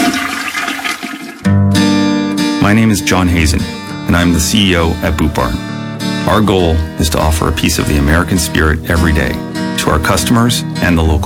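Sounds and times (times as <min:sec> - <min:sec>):
toilet flush sound effect in a plumbing advert: 0:00.0 - 0:01.5
speech: 0:02.7 - 0:05.7, 0:06.3 - 0:11.2.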